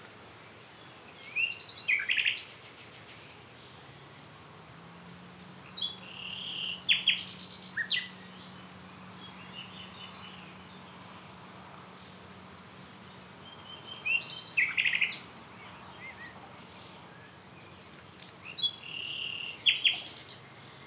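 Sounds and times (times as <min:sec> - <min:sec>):
common nightingale Luscinia megarhynchos singing: 0:05.7 - 0:10.7, 0:13.1 - 0:20.5.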